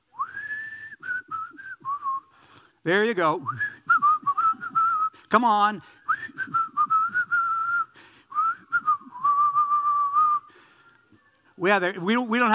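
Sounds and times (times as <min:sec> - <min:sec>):
person whistling a song melody: 0:00.1 - 0:02.6, 0:03.4 - 0:05.3, 0:06.0 - 0:11.2
speech: 0:02.8 - 0:03.7, 0:05.3 - 0:06.0, 0:11.6 - 0:12.5.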